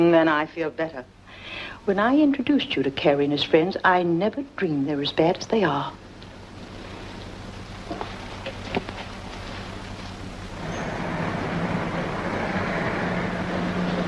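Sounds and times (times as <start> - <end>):
speech: 0.0 - 6.0
police car engine rumble passing slowly outside a house: 10.1 - 14.0
police car tires whooshing on the road: 10.6 - 14.0.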